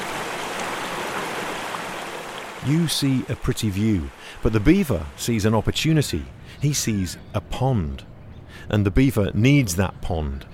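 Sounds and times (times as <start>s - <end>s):
creek water flowing and babbling over stones: 0.0s - 5.3s
speech: 2.6s - 10.5s.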